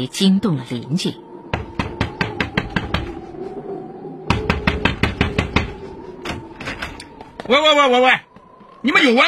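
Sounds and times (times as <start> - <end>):
speech: 0.0 - 1.3, 7.5 - 9.2
steady low drone: 0.0 - 9.2
knocking on a door: 1.5 - 3.1, 4.3 - 5.8.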